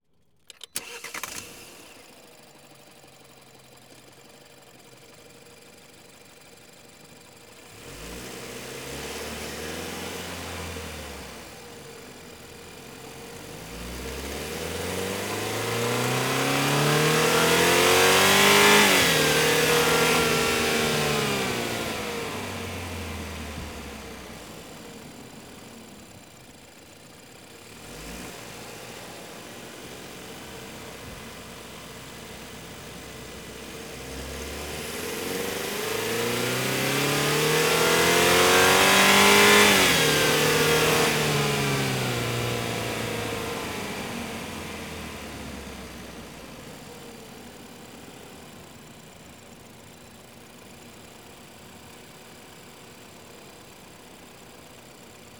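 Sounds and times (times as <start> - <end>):
2014 BMW 320i driving extremely fast: 7.7 - 25.6, 27.6 - 46.7.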